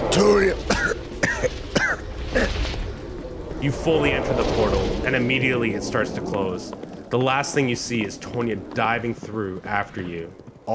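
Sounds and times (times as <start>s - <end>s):
person on horseback coughing up blood: 0.1s - 2.6s
speech: 3.6s - 10.7s.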